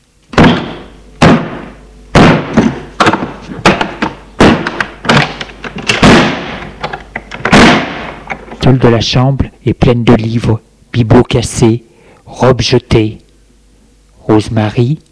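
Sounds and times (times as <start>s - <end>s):
door being forced open with heavy booming thuds: 0.3s - 6.6s
speech: 8.7s - 13.2s, 14.3s - 15.0s.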